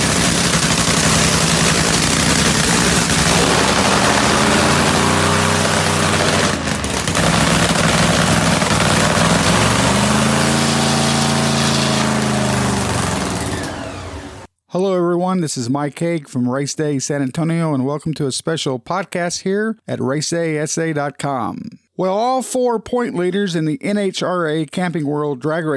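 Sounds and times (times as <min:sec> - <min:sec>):
nitro funny car engine warming up: 0:00.0 - 0:14.5
speech: 0:15.4 - 0:25.7.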